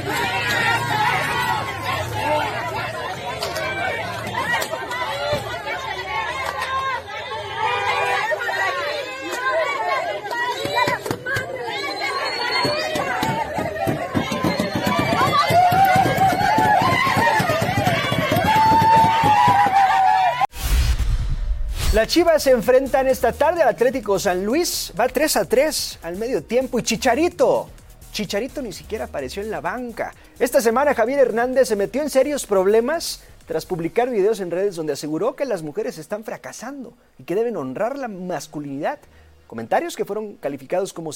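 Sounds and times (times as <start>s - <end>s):
crowd of protesters shouting, booing and jeering: 0.0s - 20.7s
sharp whistle-like cries: 11.7s - 13.3s
speech: 22.0s - 41.1s.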